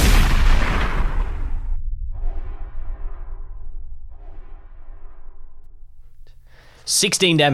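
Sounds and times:
shotgun blast: 0:00.0 - 0:02.8.

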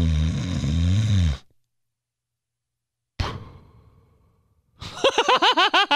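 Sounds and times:
voice imitating a father's loud rough snore: 0:00.0 - 0:01.5
laughter: 0:04.8 - 0:05.9.

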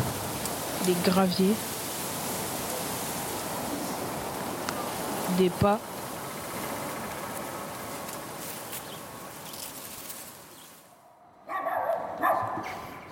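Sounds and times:
steady buzzing outdoor ambience: 0:00.0 - 0:13.1
speech: 0:00.8 - 0:01.8, 0:05.4 - 0:05.9
dog barking: 0:11.0 - 0:13.0.

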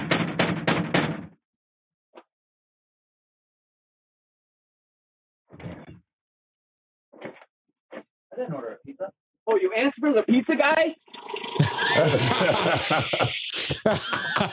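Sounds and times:
firm knocking on a door: 0:00.0 - 0:01.3
speech: 0:08.4 - 0:14.5
laughter: 0:11.5 - 0:14.5.

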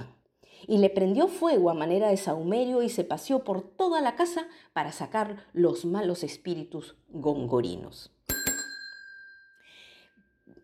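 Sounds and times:
speech: 0:00.6 - 0:08.2
bright metallic bell ringing: 0:08.3 - 0:09.8.

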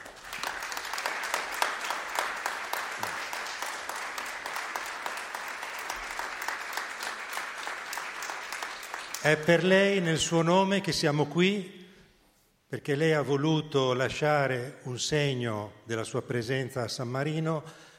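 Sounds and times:
large crowd applauding in a reverberant concert hall: 0:00.0 - 0:10.0
speech: 0:09.2 - 0:11.8, 0:12.7 - 0:17.9.

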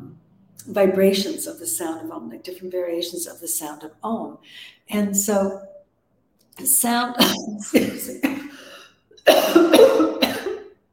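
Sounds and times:
speech: 0:00.7 - 0:05.7, 0:06.6 - 0:08.6, 0:09.2 - 0:10.0
person coughing from spice caught in the throat: 0:09.3 - 0:10.8.

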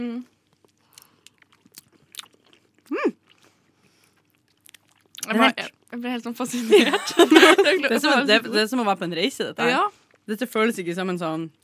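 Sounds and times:
speech: 0:00.0 - 0:00.4, 0:05.3 - 0:11.6
wet chewing of soft mochi ice cream: 0:00.4 - 0:05.9
laughter: 0:06.5 - 0:08.5.

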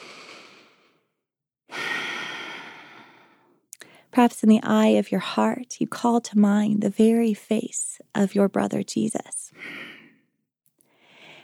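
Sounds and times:
slow inhale during contemplative prayer: 0:01.7 - 0:04.1, 0:09.6 - 0:10.2, 0:10.9 - 0:11.4
speech: 0:04.2 - 0:09.8.

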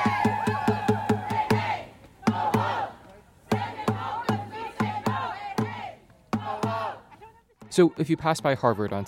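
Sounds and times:
crowd of protesters chanting in unison: 0:00.1 - 0:07.2
speech: 0:07.8 - 0:09.0.

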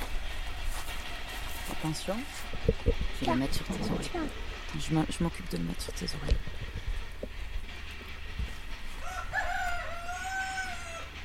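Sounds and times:
low rumble of noise: 0:00.0 - 0:11.2
speech: 0:01.8 - 0:06.6
rooster crowing on a farm among vineyards in France: 0:09.0 - 0:11.2.

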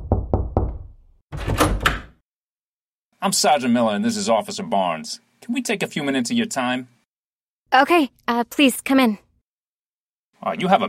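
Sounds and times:
police sergeant knocking on an apartment's wooden door: 0:00.0 - 0:02.2
speech: 0:03.2 - 0:07.0, 0:07.7 - 0:09.2, 0:10.4 - 0:10.8.

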